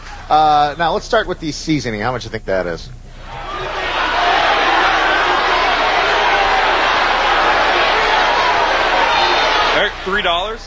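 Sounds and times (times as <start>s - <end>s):
speech: 0.3s - 3.4s, 9.8s - 10.6s
studio audience shouting disapproval: 3.2s - 10.6s.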